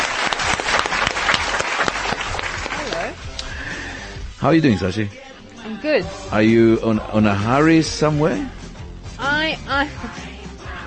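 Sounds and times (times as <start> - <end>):
small talk show audience applauding: 0.0 - 3.2
speech: 4.4 - 8.6, 9.4 - 10.3.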